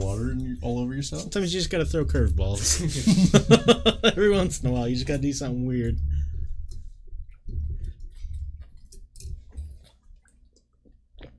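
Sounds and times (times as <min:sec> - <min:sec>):
speech: 0:00.6 - 0:06.1
laughter: 0:02.6 - 0:04.5
squishy mouth sounds and clicks while chugging beer: 0:06.7 - 0:11.3
beer chugged into a microphone with wet gulping swallows: 0:07.3 - 0:11.3.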